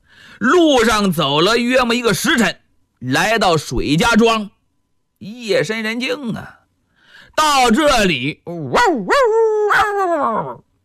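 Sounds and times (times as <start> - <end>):
speech: 0.4 - 4.6, 5.2 - 6.6, 7.4 - 10.7
stray and household dogs barking in a village at night: 8.7 - 10.0.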